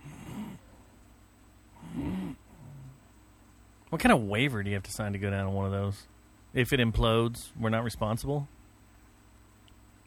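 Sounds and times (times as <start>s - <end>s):
person imitating slow heavy rasping breathing: 0.0s - 0.8s, 1.8s - 3.0s
speech: 3.9s - 8.6s.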